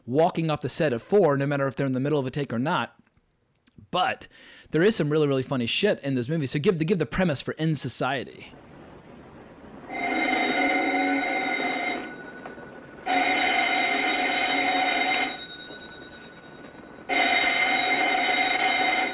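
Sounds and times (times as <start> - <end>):
speech: 0.1 - 3.0, 3.9 - 8.7
telephone ringing with bright electronic buzzing tone: 8.7 - 19.1.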